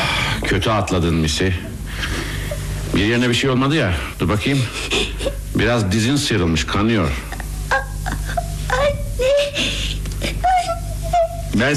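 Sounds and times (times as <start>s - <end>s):
speech: 0.5s - 2.2s, 2.9s - 5.0s, 5.6s - 7.3s, 11.6s - 11.7s
young child crying and whimpering: 7.7s - 11.5s.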